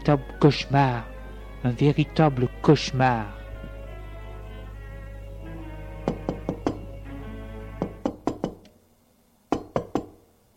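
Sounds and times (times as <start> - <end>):
speech: 0.0 - 3.4
low steady hum: 0.0 - 10.5
knocking on a door: 6.0 - 6.9, 7.8 - 8.6, 9.5 - 10.2.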